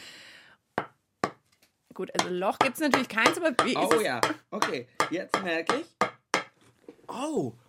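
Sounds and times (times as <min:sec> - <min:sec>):
person's forehead knocking on a wooden board imitating a woodpecker: 0:00.8 - 0:01.4, 0:02.2 - 0:06.6
speech: 0:02.0 - 0:06.0, 0:07.1 - 0:07.6.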